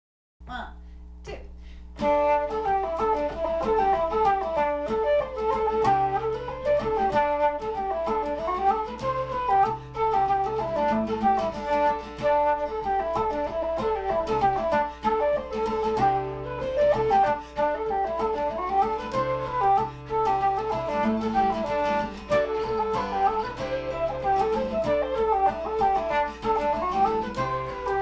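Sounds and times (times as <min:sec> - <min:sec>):
guitar: 0:01.6 - 0:28.0
flute: 0:02.0 - 0:28.0.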